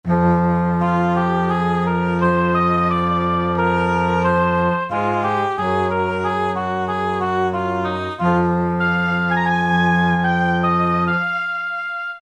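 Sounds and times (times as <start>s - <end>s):
orchestral strings on E-mu PK-6: 0.1s - 12.1s.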